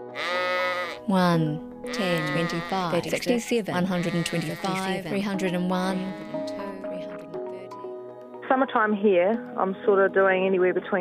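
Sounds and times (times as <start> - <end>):
sheep bleating in a shearing shed: 0.0 - 1.2, 1.8 - 5.2, 6.0 - 6.8
speech: 1.0 - 6.7, 8.5 - 11.0.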